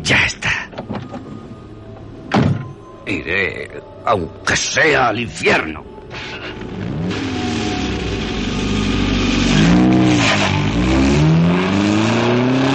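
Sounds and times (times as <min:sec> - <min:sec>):
speech: 0:00.1 - 0:00.4, 0:03.1 - 0:05.9
gritty tire screech: 0:06.1 - 0:12.7
car engine revving hard and accelerating: 0:06.2 - 0:12.7.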